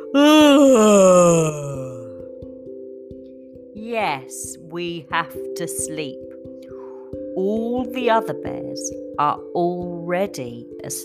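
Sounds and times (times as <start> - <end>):
person yawning: 0.0 - 2.2
speech: 0.1 - 1.6, 3.9 - 6.3, 7.4 - 11.0.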